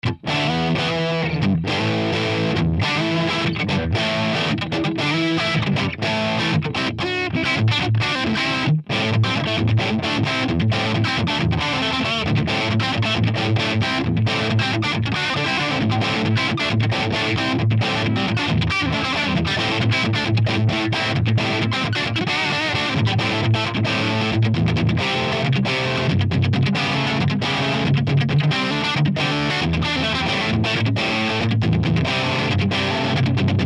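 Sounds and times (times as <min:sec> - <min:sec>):
rhythm guitar through a JCM900 2203 amplifier: 0:00.0 - 0:33.6.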